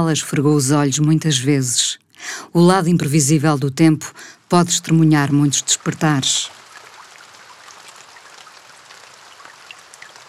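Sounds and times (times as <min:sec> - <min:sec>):
speech: 0:00.0 - 0:06.6
steady rain in a continuous soft hiss: 0:04.2 - 0:10.2.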